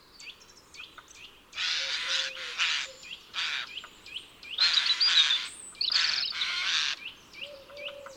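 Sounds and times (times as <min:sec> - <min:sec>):
acorn-storing bird giving strident harsh croaking calls: 0:01.6 - 0:03.9, 0:04.6 - 0:08.1.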